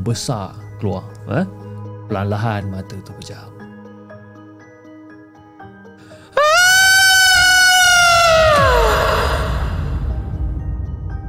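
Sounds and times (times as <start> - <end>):
speech: 0.0 - 3.6
shrill ear-piercing scream: 6.4 - 10.0.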